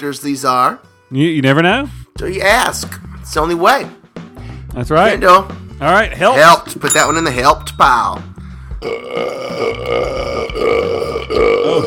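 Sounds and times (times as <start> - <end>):
speech: 0.0 - 4.0, 4.7 - 11.8
loud prolonged raspy belch: 8.8 - 11.8.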